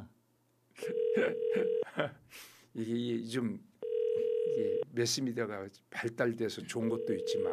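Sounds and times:
ringback tone from an unanswered outgoing phone call: 0.8s - 1.8s, 3.8s - 4.8s, 6.9s - 7.5s
speech: 1.2s - 3.7s, 4.5s - 7.5s.

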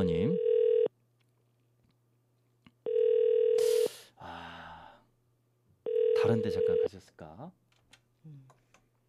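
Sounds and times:
speech: 0.0s - 0.5s, 6.4s - 7.6s, 8.2s - 8.6s
landline telephone ringback tone on an outgoing radio broadcast call: 0.3s - 0.9s, 2.9s - 3.9s, 5.9s - 6.9s.

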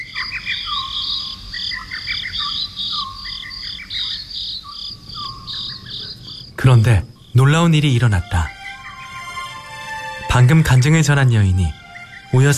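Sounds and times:
night insects chirping by a wall: 0.0s - 12.5s
speech: 6.7s - 8.5s, 10.4s - 12.5s.

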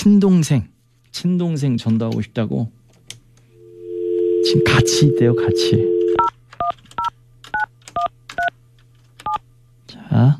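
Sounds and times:
speech: 0.0s - 2.8s, 4.4s - 6.0s, 10.2s - 10.3s
faint low hum: 0.0s - 10.3s
telephone keypad dialing tones: 4.0s - 8.5s.

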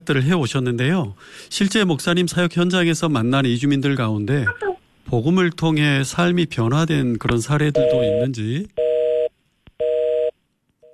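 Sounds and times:
speech: 0.0s - 8.8s
telephone busy tone after a call was cut off: 7.8s - 8.2s, 8.8s - 10.9s.

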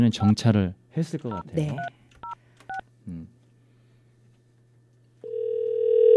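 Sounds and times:
speech: 0.0s - 2.0s
short telephone keypad beeps: 1.3s - 2.8s
steady telephone ringback tone of outgoing call: 5.2s - 6.1s.

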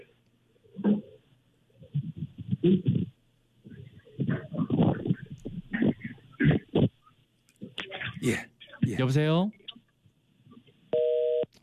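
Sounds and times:
low noise: 0.0s - 11.6s
speech: 2.6s - 3.0s, 8.2s - 9.6s
busy or disconnect tone of a dropped phone call: 10.9s - 11.5s.

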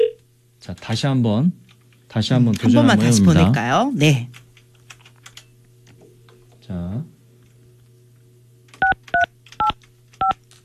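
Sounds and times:
faint steady hum: 0.0s - 10.6s
speech: 0.6s - 4.4s
telephone keypad dialing beeps: 8.8s - 10.4s.

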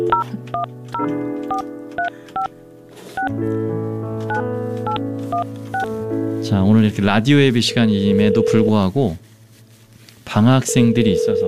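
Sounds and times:
touch-tone telephone keypad beeps: 0.0s - 2.5s, 4.3s - 5.9s
speech: 0.0s - 9.3s, 10.3s - 11.4s.

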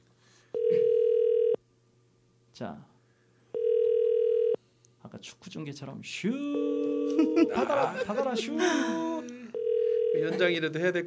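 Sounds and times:
faint hum: 0.0s - 11.0s
telephone ringback tone on an outgoing call: 0.6s - 1.6s, 3.5s - 4.6s, 6.6s - 7.4s, 9.5s - 10.4s
speech: 2.6s - 2.9s, 5.1s - 9.1s, 10.2s - 11.0s
laughter: 7.1s - 9.2s.

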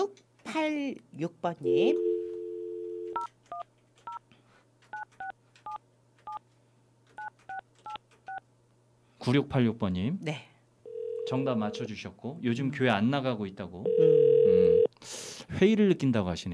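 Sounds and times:
speech: 0.6s - 2.1s, 9.2s - 10.5s, 11.3s - 16.5s
telephone dial tone: 1.7s - 3.2s, 10.9s - 11.8s, 13.9s - 14.9s
telephone keypad dual-tone beeps: 3.1s - 4.2s, 5.0s - 6.4s.

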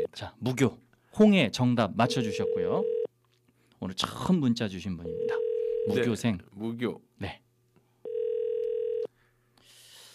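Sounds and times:
speech: 0.0s - 3.0s, 3.8s - 7.4s
telephone ringback tone while calling a listener: 2.1s - 3.1s, 5.2s - 5.9s, 8.1s - 9.1s.

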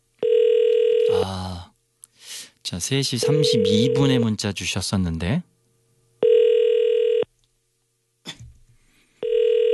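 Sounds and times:
telephone ringback tone on an outgoing call: 0.2s - 1.2s, 3.2s - 4.2s, 6.2s - 7.2s, 9.2s - 9.7s
speech: 2.7s - 5.5s.

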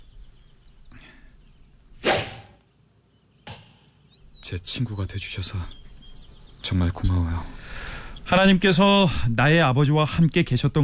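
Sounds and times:
sharp arrow release from a bow: 2.0s - 2.6s
speech: 4.5s - 5.8s, 6.7s - 7.6s, 8.3s - 10.8s.

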